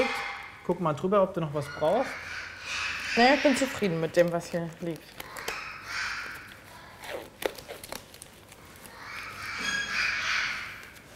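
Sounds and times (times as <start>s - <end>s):
injured parakeet screeching calls in a veterinary clinic: 0.0s - 0.7s, 1.6s - 7.2s, 8.8s - 11.0s
speech: 0.7s - 5.3s
rustling: 3.2s - 11.1s.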